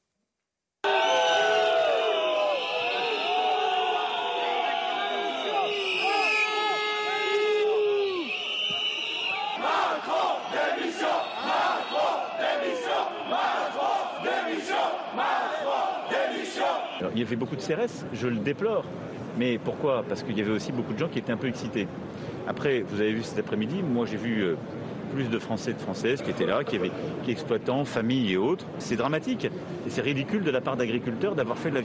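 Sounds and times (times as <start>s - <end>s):
angry shouting: 0.8s - 8.4s, 9.3s - 17.0s
large crowd jeering at president: 0.8s - 17.0s
crowd whistling shrilly: 0.9s - 6.8s, 8.0s - 9.8s, 10.4s - 12.5s
speech: 17.2s - 31.8s.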